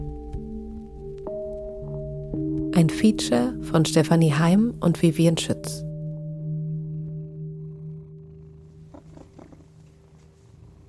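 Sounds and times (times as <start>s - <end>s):
speech: 2.4s - 5.9s
cat purring: 6.1s - 10.8s
soft rustling: 9.2s - 10.8s.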